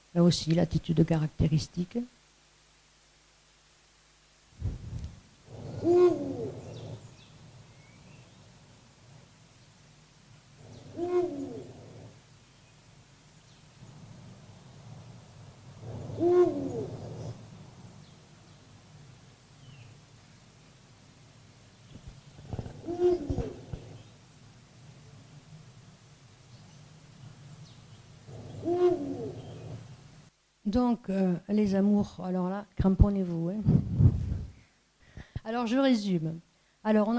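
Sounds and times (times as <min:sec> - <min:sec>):
speech: 0:00.2 - 0:02.2, 0:30.8 - 0:33.8, 0:35.5 - 0:37.1
low hooting bird calls from a bird on a prominent perch: 0:05.4 - 0:09.8, 0:10.5 - 0:19.0, 0:21.7 - 0:24.3, 0:26.4 - 0:30.2.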